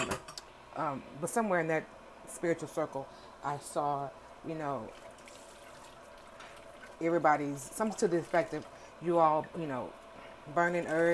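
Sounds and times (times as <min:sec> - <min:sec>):
speech: 0:00.8 - 0:05.1, 0:07.0 - 0:11.1
thin stream of water trickling from a tap while washing dishes: 0:04.9 - 0:07.1.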